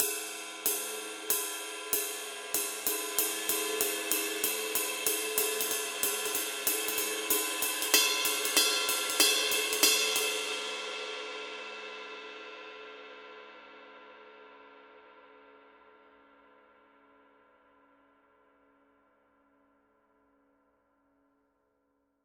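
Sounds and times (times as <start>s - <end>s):
21-inch medium Paiste Masters ride cymbal pattern: 0.0s - 11.8s.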